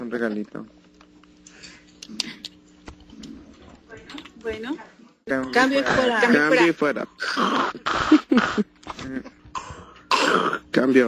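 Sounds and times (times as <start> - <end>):
speech: 0.1 - 0.8, 4.4 - 9.3, 10.8 - 11.0
harsh cough: 7.2 - 10.6.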